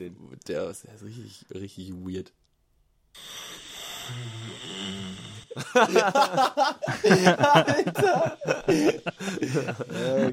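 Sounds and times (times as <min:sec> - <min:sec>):
speech: 0:00.0 - 0:02.5, 0:03.2 - 0:10.3
low rumbling snore: 0:04.0 - 0:05.5
loud bursts of laughter: 0:05.5 - 0:10.3
excited voices: 0:05.7 - 0:10.3.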